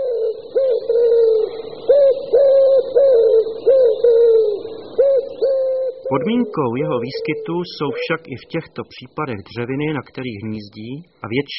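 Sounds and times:
male wood pigeon cooing in a city: 0.0 - 8.3
speech: 6.1 - 11.5.

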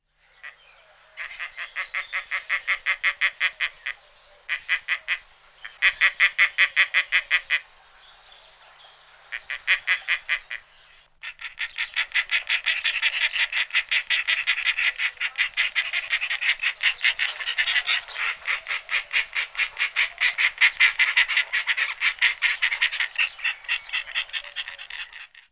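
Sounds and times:
Egyptian vulture Neophron percnopterus calling: 0.4 - 25.5.

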